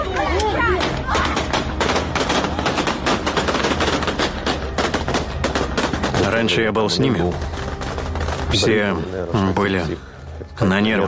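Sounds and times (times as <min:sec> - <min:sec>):
gunshots fired into the air at a rally: 0:00.8 - 0:09.2
speech: 0:06.4 - 0:07.6, 0:08.5 - 0:11.0.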